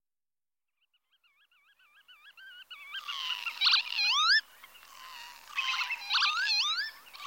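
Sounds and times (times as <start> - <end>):
Northern lapwing calls with soft wavering notes and wheezy upslurred cries: 2.0 - 7.2.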